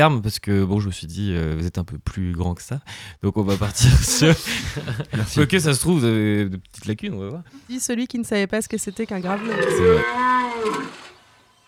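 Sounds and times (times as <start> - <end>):
speech: 0.0 - 11.1
laughter: 3.5 - 5.9
deer bellowing a rutting call: 9.2 - 11.4.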